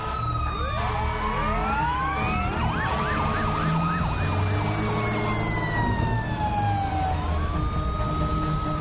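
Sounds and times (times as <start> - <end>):
fire truck engines rumbling pulling out of the station garage: 0.0 - 8.7
fire truck sirens wailing and yelping: 0.0 - 8.7.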